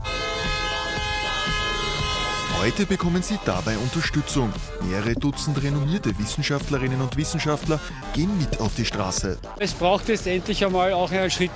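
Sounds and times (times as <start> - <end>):
car horns honking in stalled traffic at Praterstern in Vienna: 0.1 - 2.9
speech: 2.6 - 11.5.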